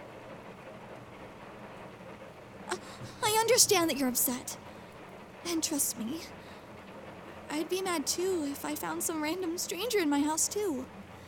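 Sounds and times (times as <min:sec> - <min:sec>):
steady rain pouring outside: 0:00.0 - 0:11.2
speech: 0:03.5 - 0:04.7, 0:05.4 - 0:06.5, 0:07.5 - 0:11.0.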